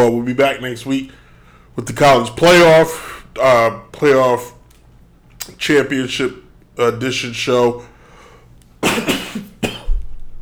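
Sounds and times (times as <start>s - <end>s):
speech: 0.0s - 1.2s, 1.8s - 4.6s, 5.5s - 7.9s
person coughing after choking on water: 8.8s - 10.0s.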